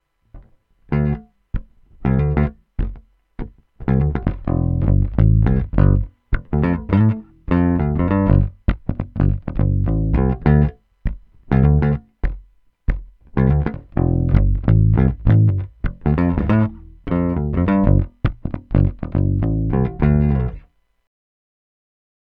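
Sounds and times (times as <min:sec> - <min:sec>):
electric guitar neck pickup tone: 0:00.4 - 0:20.6.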